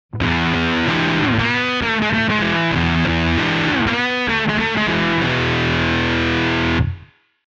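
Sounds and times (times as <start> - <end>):
guitar through a fuzz pedal: 0.1 - 7.2.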